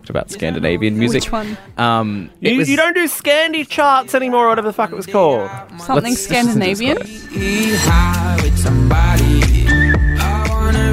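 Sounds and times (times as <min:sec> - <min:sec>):
pop song with drum hits and bass: 0:00.0 - 0:02.8, 0:04.8 - 0:10.9
speech: 0:00.1 - 0:09.7
bright whistled melody: 0:07.0 - 0:10.9.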